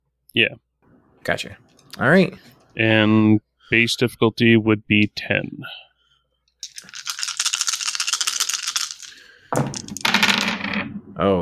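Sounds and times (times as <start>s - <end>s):
speech: 0.3s - 5.9s, 11.2s - 11.4s
dice rolling on a hard tabletop: 6.6s - 11.2s.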